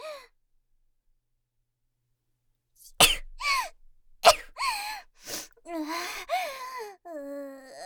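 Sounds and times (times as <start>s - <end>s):
person sneezing: 3.0s - 5.5s
person sniffling: 4.3s - 6.6s
person making breathy whimpering vocal sounds: 5.7s - 7.8s.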